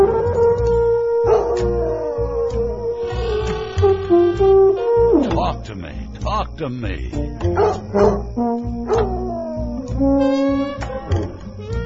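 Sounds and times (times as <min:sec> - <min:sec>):
dog howling: 0:00.0 - 0:03.5, 0:08.9 - 0:09.9
thumping musical beat: 0:03.8 - 0:11.8
speech: 0:05.7 - 0:08.9, 0:10.0 - 0:10.8.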